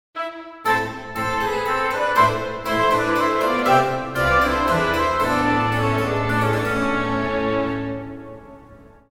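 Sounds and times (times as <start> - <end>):
baroque ringtone: 0.9 - 7.8.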